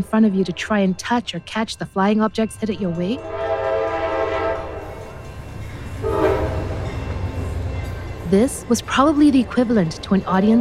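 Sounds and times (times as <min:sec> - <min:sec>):
speech: 0:00.0 - 0:03.4, 0:08.3 - 0:10.5
train arriving at a station in La Ciotat rumbling: 0:00.0 - 0:10.5
train horn blasts: 0:03.0 - 0:05.0, 0:06.0 - 0:06.9.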